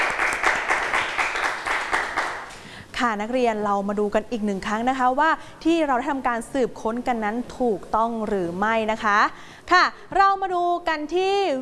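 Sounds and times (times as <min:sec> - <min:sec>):
students applauding a classmate in class: 0:00.0 - 0:02.7
speech: 0:03.0 - 0:11.5.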